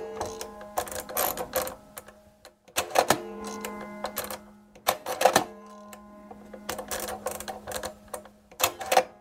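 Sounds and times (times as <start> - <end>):
early hand-cranked encryption machine encoding a message: 0.2 - 9.1.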